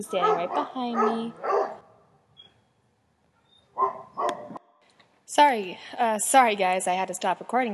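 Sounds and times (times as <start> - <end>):
speech: 0.0 - 1.7, 5.3 - 7.7
small dog barking in backyard: 0.1 - 1.8, 3.8 - 4.6.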